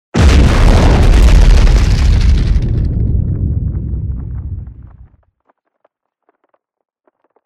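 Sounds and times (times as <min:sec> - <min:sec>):
explosion: 0:00.1 - 0:05.1.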